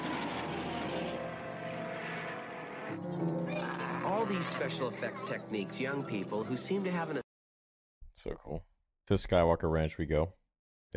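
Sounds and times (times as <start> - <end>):
propeller airplane engine droning: 0.0 - 3.2
speech: 2.9 - 7.2, 8.2 - 10.9.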